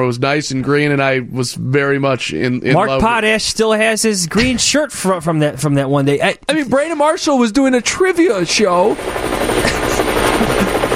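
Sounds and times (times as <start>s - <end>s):
speech: 0.0s - 9.8s
helicopter rotor drone: 6.7s - 10.9s
laughter: 9.5s - 10.9s.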